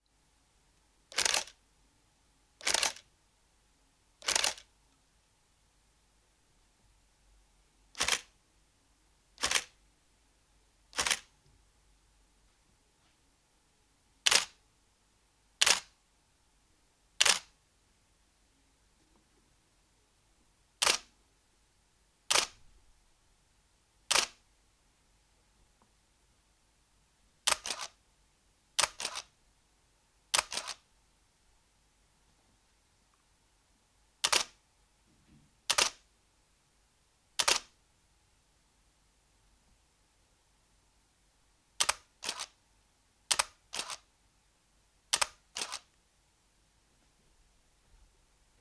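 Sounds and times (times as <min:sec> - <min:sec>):
noise: 0:00.0 - 0:48.5.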